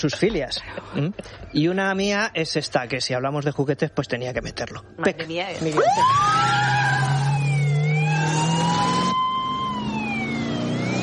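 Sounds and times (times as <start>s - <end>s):
speech: 0.0s - 7.0s
family car engine revving and accelerating: 5.8s - 11.0s.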